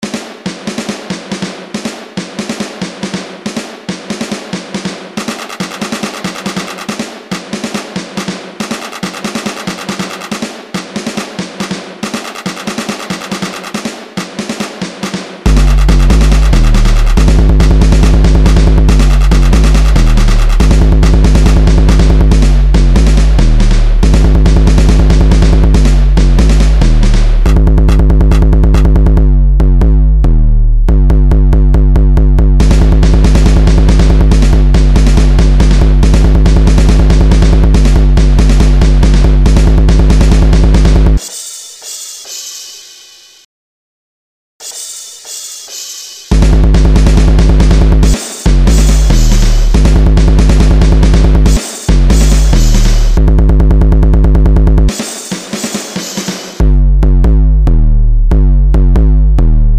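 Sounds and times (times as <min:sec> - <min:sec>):
deep bass: 0:15.5 - 0:41.2, 0:46.3 - 0:54.9, 0:56.6 - 0:59.7.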